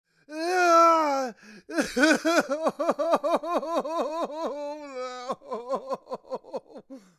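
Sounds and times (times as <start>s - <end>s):
man crying and wailing: 0.3s - 7.1s.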